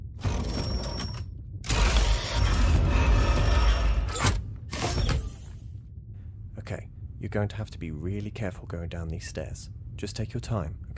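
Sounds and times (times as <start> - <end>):
heavy mechanical door aboard a ship in a video game grinding open: 0.2 - 5.3
speech: 7.2 - 10.9.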